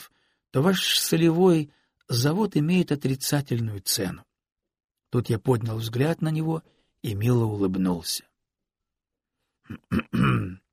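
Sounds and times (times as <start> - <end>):
speech: 0.5 - 4.3, 5.1 - 8.3, 9.7 - 10.6
person clearing throat loudly: 9.7 - 10.7.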